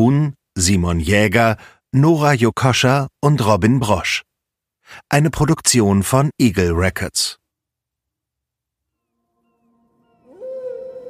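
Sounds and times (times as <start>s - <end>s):
speech: 0.0s - 4.3s, 4.9s - 7.4s
humpback whale song: 9.0s - 11.0s.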